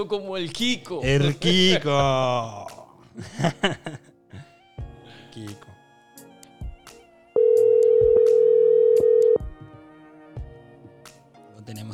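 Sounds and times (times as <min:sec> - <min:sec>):
speech: 0:00.0 - 0:04.1
laughter: 0:03.2 - 0:04.5
telephone tone as a phone call is placed: 0:07.4 - 0:09.4.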